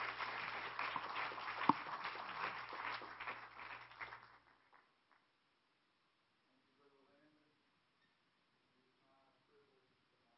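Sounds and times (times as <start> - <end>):
audience clapping: 0.0 - 5.3.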